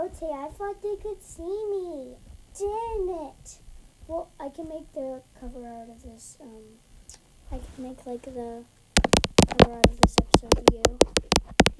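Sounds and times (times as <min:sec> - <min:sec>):
speech: 0:00.0 - 0:08.8, 0:09.6 - 0:11.7
fake nails tapping and clicking: 0:09.0 - 0:11.7.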